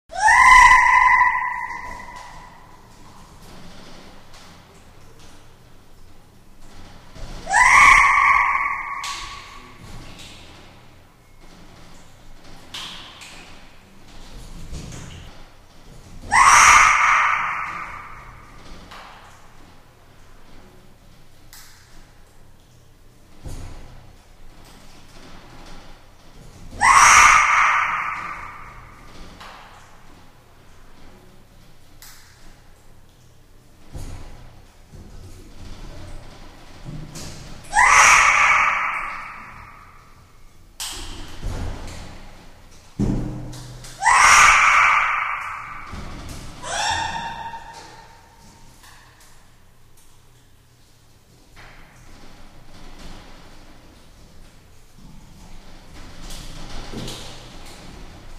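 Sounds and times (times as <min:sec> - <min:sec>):
chimpanzee with echo: 0:00.1 - 0:03.4, 0:06.8 - 0:10.4, 0:16.3 - 0:18.8, 0:26.7 - 0:29.3, 0:37.6 - 0:41.9, 0:43.9 - 0:49.0.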